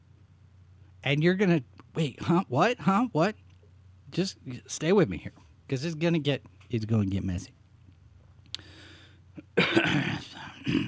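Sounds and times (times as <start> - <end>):
speech: 1.0 - 3.4, 4.1 - 7.6
harsh raspy cough from a lingering illness: 9.4 - 10.8.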